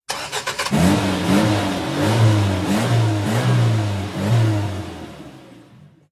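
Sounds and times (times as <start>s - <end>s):
car starting: 0.1s - 6.0s.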